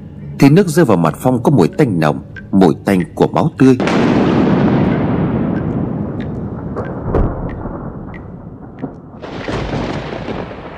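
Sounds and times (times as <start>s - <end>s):
speech: 0.4s - 4.2s
thunder rumbling: 3.8s - 10.7s.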